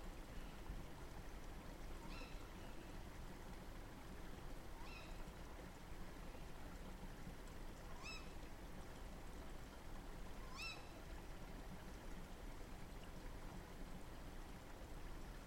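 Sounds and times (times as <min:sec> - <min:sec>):
constant low rumble and hiss: 0:00.0 - 0:15.4
owl giving upward-arching squealing calls at night: 0:02.1 - 0:02.4, 0:04.8 - 0:05.1, 0:08.0 - 0:08.3, 0:10.4 - 0:10.9.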